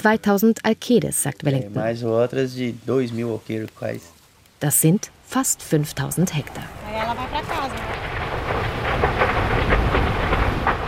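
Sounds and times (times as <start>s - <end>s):
speech: 0.0s - 7.9s
dense crackling bursts of a rainforest fire: 0.0s - 10.8s
roar of a big rainforest fire: 6.4s - 10.8s.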